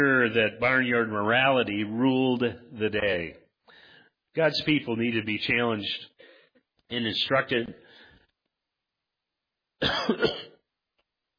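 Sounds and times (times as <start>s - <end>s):
speech: 0.0s - 3.4s, 4.4s - 6.2s, 6.9s - 7.8s, 9.8s - 10.5s
person coughing into a microphone: 9.8s - 10.6s.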